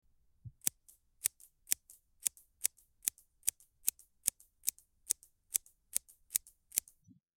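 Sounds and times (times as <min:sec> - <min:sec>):
scissors cutting hair: 0:00.6 - 0:07.0.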